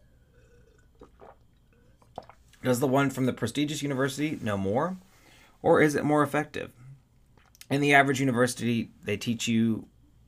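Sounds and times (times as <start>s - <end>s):
person drinking water with sips and swallows: 0.0s - 2.6s
speech: 2.6s - 6.8s, 7.7s - 9.9s.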